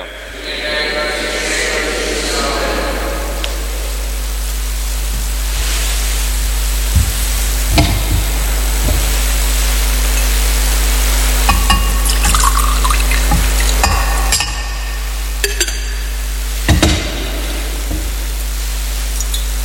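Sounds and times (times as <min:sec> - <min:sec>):
steady low hum: 0:00.0 - 0:19.4
water poured into wine: 0:11.5 - 0:14.6.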